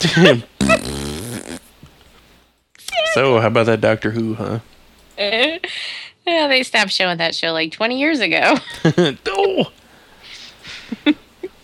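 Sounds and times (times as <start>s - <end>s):
speech: 0.0s - 0.5s, 3.2s - 9.8s
person making a vocal fart noise: 0.5s - 1.8s.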